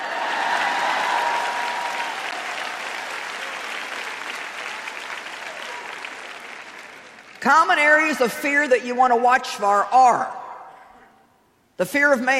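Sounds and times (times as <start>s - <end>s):
audience clapping: 0.0s - 7.8s
speech: 7.4s - 10.4s, 11.8s - 12.3s.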